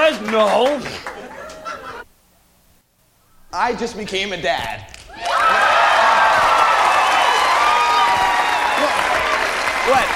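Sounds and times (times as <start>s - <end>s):
loud sustained audience applause: 0.0s - 1.8s, 5.1s - 10.1s
speech: 0.3s - 1.1s, 3.6s - 5.6s, 9.9s - 10.1s
laughter: 0.8s - 2.1s
audience cheers and whoops: 5.1s - 10.1s.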